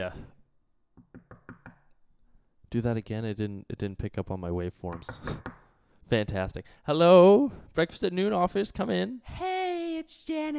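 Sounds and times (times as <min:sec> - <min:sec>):
speech: 0:00.0 - 0:00.3, 0:02.7 - 0:05.5, 0:06.1 - 0:09.5, 0:10.1 - 0:10.5
knocking on a door: 0:01.0 - 0:01.8.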